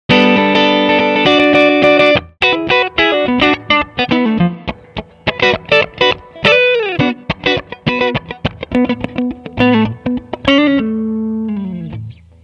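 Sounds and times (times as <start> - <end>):
guitar ringtone: 0.1 - 12.3.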